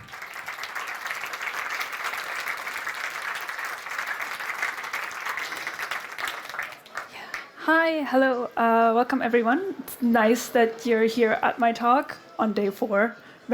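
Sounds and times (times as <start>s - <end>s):
audience applause: 0.0s - 7.6s
speech: 7.7s - 13.5s.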